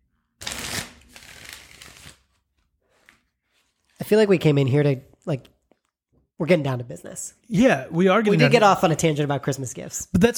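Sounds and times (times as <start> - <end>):
deck of cards being riffle shuffled: 0.4 - 2.4
speech: 4.1 - 5.6, 6.4 - 10.3.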